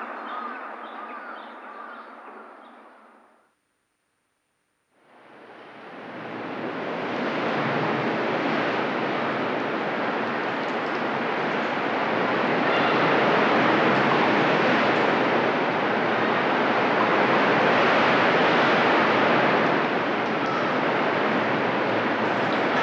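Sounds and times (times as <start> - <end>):
rough sea waves roaring against the shore of an uninhabited island near Tobishima: 5.3 - 22.8.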